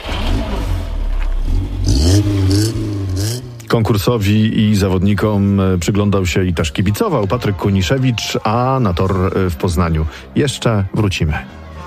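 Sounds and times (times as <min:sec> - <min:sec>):
competition car engine revving on a race track: 0:00.0 - 0:04.5
speech: 0:03.7 - 0:11.6.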